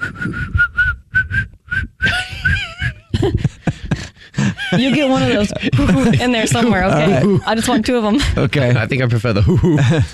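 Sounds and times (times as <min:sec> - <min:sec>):
person attempting to whistle in breathy puffs: 0:00.0 - 0:03.1
laughter: 0:02.1 - 0:10.1
speech: 0:04.7 - 0:10.1.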